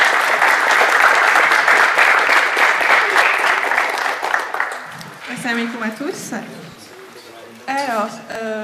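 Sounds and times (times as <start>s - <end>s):
audience applause: 0.0s - 6.1s
speech: 5.5s - 6.8s, 7.7s - 8.6s.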